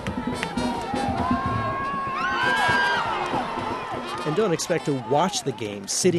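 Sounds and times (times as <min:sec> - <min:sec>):
steady drum thumps: 0:00.0 - 0:04.4
soccer fans in a stadium cheering and chanting: 0:00.0 - 0:06.1
speech: 0:04.3 - 0:06.1.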